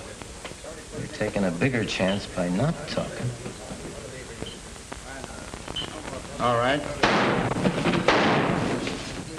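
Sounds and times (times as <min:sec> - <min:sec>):
speech: 0:01.2 - 0:03.6, 0:06.4 - 0:07.5
sharp loud gunshots: 0:07.0 - 0:08.8.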